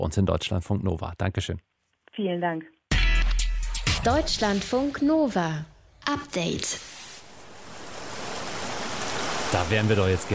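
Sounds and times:
speech: 0.1s - 2.8s, 4.0s - 7.0s, 9.5s - 10.3s
soft sea waves washing in: 6.8s - 10.3s.

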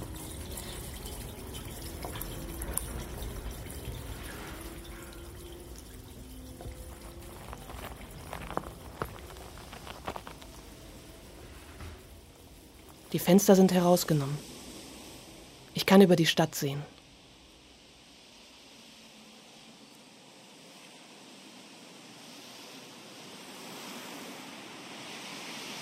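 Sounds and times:
water dripping from pipes: 0.0s - 15.8s
low broad wash: 0.0s - 25.8s
speech: 13.1s - 14.5s, 15.9s - 16.9s.

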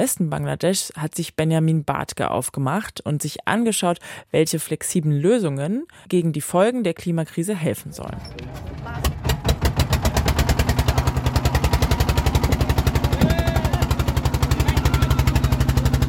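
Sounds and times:
speech: 0.0s - 9.2s
motorboat engine puttering on the Brahmaputra river in Bangladesh: 8.0s - 16.0s.

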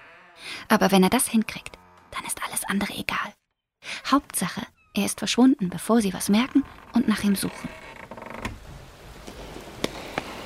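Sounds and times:
door creaking open: 0.0s - 2.6s, 4.6s - 5.4s, 6.1s - 8.7s
speech: 0.6s - 7.8s.

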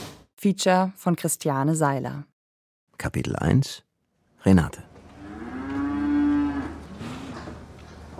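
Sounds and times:
speech: 0.4s - 2.3s, 3.0s - 3.9s, 4.4s - 4.9s
black cow with white belly mooing: 5.1s - 7.5s.

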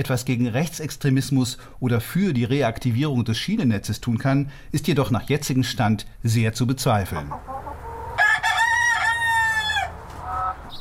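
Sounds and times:
speech: 0.0s - 7.7s
chickens clucking in an outdoor farmyard: 7.0s - 10.7s
rooster crowing in an outdoor farmyard: 7.5s - 10.6s.

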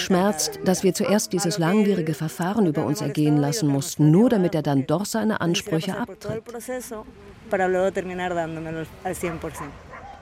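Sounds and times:
speech: 0.1s - 9.9s
female dog yipping: 9.3s - 10.2s.

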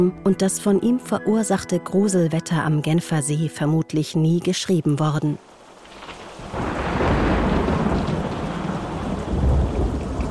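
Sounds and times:
speech: 0.0s - 5.5s
steady heavy rain: 5.4s - 10.2s
deep rolling thunder: 5.5s - 10.2s.

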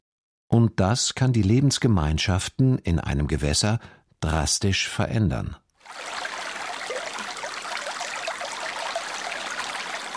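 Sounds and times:
speech: 0.7s - 6.2s
small river flowing slowly: 5.8s - 10.1s.

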